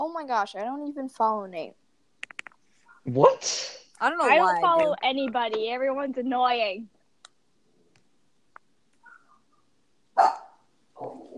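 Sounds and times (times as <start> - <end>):
speech: 0.2 - 1.8, 3.0 - 7.0, 10.2 - 10.4
dog in a closet barking: 9.0 - 9.4, 10.2 - 11.3.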